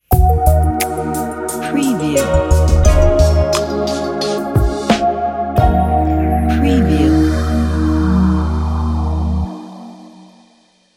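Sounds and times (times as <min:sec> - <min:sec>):
ambient logo jingle: 0:00.1 - 0:10.4.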